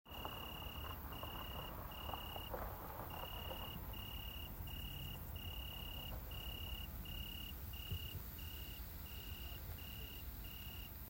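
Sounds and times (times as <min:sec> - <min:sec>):
Weinhaehnchen tree cricket in Leipzig: 0:00.1 - 0:11.0.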